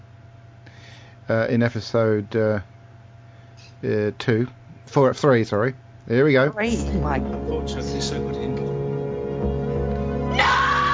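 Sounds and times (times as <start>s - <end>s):
speech: 1.3s - 2.7s, 3.8s - 8.6s
sustained musical sting with droning tones: 6.6s - 10.9s
person screaming: 10.3s - 10.9s.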